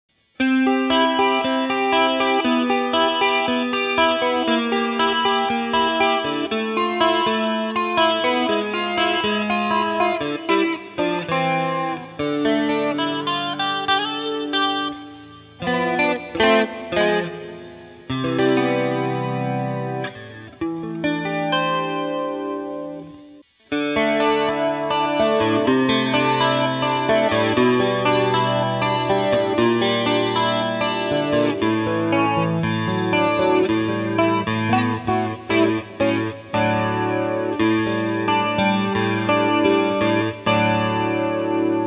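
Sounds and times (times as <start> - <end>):
guitar with flanger effect on an AXE FX 3: 0.2 - 41.8.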